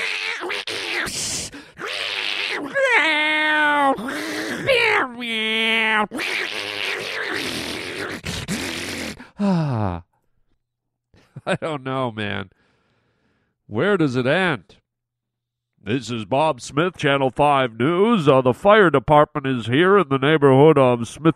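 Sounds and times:
cats yowling and caterwauling while mating at night: 0:00.0 - 0:01.2, 0:01.8 - 0:09.2
speech: 0:11.4 - 0:12.6, 0:13.7 - 0:14.8, 0:15.8 - 0:21.3.

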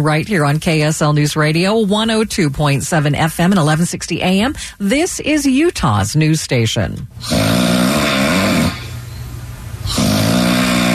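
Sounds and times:
speech: 0:00.0 - 0:07.8
loud rumbling snoring from a sleeping husband: 0:07.2 - 0:09.0, 0:09.8 - 0:10.9.

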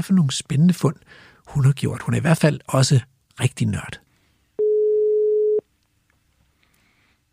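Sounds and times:
speech: 0:00.0 - 0:04.0
telephone ringing tone while placing a call: 0:04.6 - 0:05.6.

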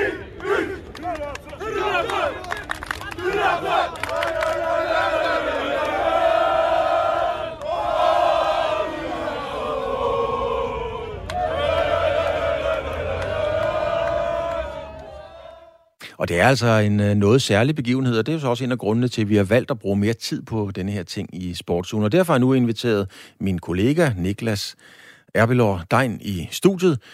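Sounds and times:
large crowd of football fans cheering and chanting in an open square: 0:00.0 - 0:15.9
speech: 0:16.2 - 0:27.1.

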